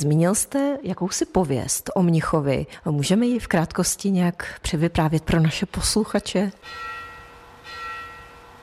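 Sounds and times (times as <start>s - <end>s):
speech: 0.0s - 6.9s
church bell striking: 6.6s - 8.6s.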